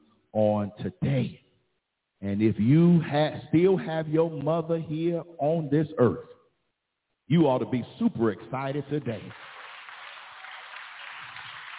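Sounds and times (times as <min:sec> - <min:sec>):
speech: 0:00.4 - 0:01.4, 0:02.2 - 0:06.4, 0:07.3 - 0:09.5
church audience clapping: 0:09.0 - 0:11.7.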